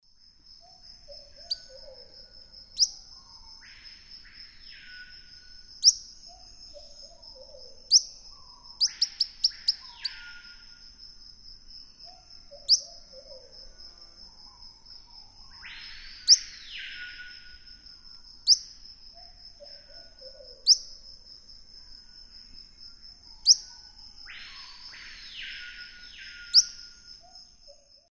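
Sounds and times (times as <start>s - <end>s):
Myiobius barbatus calls and subsong: 0.6s - 10.8s, 12.0s - 13.6s, 15.0s - 17.7s, 18.4s - 21.0s, 23.3s - 28.0s.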